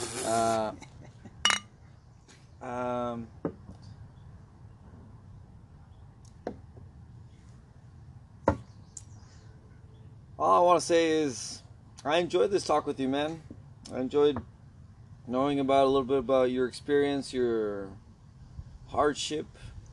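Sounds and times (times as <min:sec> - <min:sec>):
short vocal sounds: 0:00.0 - 0:00.8
speech: 0:00.3 - 0:00.9, 0:02.6 - 0:03.6, 0:10.4 - 0:14.5, 0:15.3 - 0:18.0, 0:18.9 - 0:19.7
beer glasses clinking in a toast: 0:01.4 - 0:01.7.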